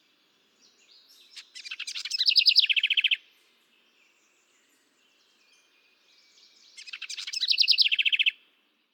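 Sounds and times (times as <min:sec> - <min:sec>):
house wren singing: 0:01.2 - 0:03.2, 0:06.8 - 0:08.3.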